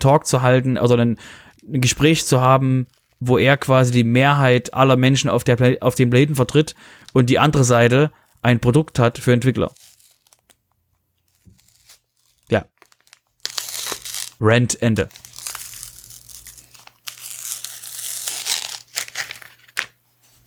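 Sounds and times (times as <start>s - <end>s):
speech: 0.0s - 9.8s, 12.5s - 12.7s, 14.4s - 15.2s
crinkly food packaging slowly torn open: 1.3s - 3.7s, 6.4s - 14.4s, 15.0s - 20.0s.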